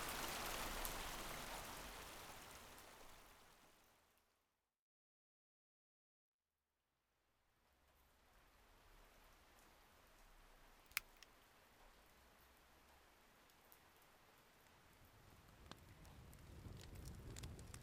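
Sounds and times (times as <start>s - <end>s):
rain falling: 0.0s - 4.1s, 7.7s - 17.8s.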